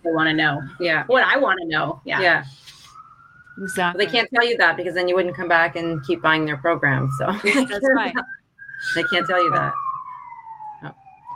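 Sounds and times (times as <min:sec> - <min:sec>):
city traffic in downtown Vancouver: 0:00.0 - 0:09.8
emergency vehicle siren passing through city traffic in downtown Vancouver: 0:00.0 - 0:11.3
speech: 0:00.1 - 0:02.8, 0:03.6 - 0:09.8, 0:10.8 - 0:11.0
laughter: 0:07.4 - 0:08.4.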